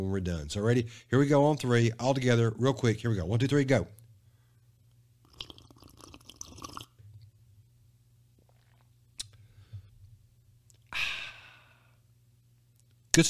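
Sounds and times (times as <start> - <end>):
speech: 0.0 - 4.0
people sipping and slurping a drink together: 5.3 - 7.0, 8.4 - 9.4
loud breathy exhale of satisfaction: 10.9 - 12.0.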